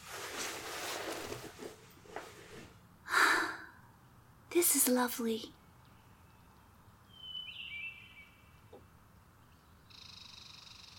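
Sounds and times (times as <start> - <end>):
low outdoor hum: 0.0 - 10.9
birds singing in a tree in thin high chirps: 4.0 - 10.9
speech: 4.6 - 5.6.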